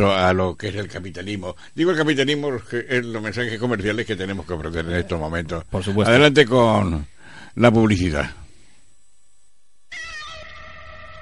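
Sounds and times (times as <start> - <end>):
speech: 0.0 - 8.4
cat meowing: 9.9 - 11.2.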